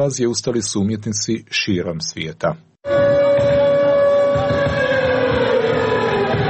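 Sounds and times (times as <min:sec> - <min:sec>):
speech: 0:00.0 - 0:02.7
air raid siren wailing at a humanitarian concert for Ukraine in Belgrade: 0:02.8 - 0:06.4
rumbling crowded background: 0:02.9 - 0:06.4.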